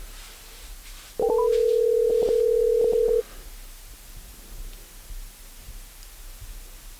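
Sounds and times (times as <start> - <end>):
phone ringback tone on an outgoing call: 1.2 - 3.2.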